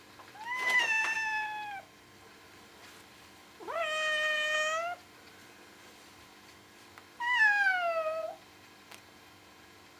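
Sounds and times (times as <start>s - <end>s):
cat meowing: 0.4s - 1.9s, 3.6s - 5.0s, 7.2s - 8.4s.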